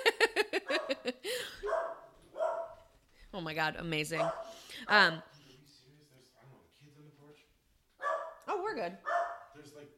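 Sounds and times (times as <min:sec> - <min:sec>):
dog barking at someone at the door: 0:00.7 - 0:02.8, 0:04.2 - 0:04.6, 0:08.0 - 0:09.6
speech: 0:03.4 - 0:05.3, 0:08.8 - 0:09.1.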